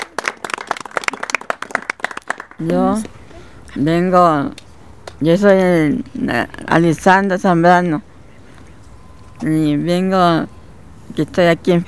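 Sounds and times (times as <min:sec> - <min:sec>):
small group clapping at a hospital crafts gathering: 0:00.0 - 0:03.2
speech: 0:02.6 - 0:04.6, 0:05.2 - 0:08.1, 0:09.4 - 0:10.6, 0:11.2 - 0:11.8.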